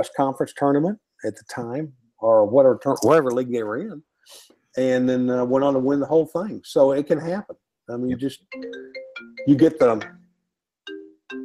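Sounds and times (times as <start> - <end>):
speech: 0.0 - 10.2
melodic phone ringtone for an incoming call: 8.5 - 11.4.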